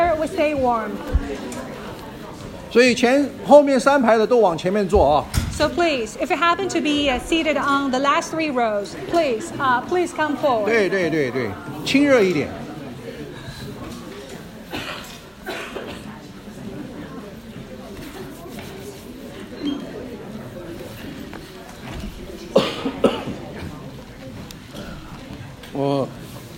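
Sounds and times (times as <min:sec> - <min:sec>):
low murmur of room noise: 0:00.0 - 0:26.5
speech: 0:00.2 - 0:01.6, 0:02.7 - 0:12.6
person coughing in short harsh bursts: 0:14.7 - 0:16.2, 0:22.5 - 0:23.4.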